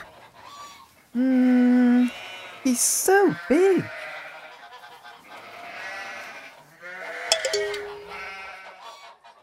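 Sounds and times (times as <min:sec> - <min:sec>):
speech: 0:01.2 - 0:01.4, 0:02.7 - 0:04.0
baby lamb bleating in high-pitched quavering calls: 0:02.0 - 0:04.7, 0:05.2 - 0:07.3, 0:08.1 - 0:08.9.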